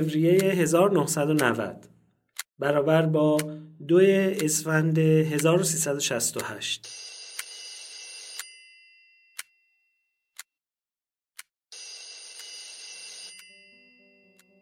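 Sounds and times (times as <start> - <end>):
speech: 0.0 - 2.0, 2.6 - 7.1
sharp ticking clicks: 0.0 - 7.6
old-style telephone bell ringing: 6.8 - 9.4, 11.7 - 14.6.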